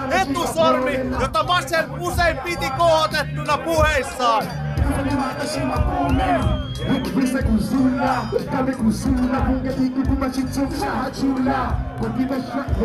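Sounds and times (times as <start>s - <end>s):
speech: 0.3s - 12.8s
concert audience rapping in unison: 4.0s - 12.8s.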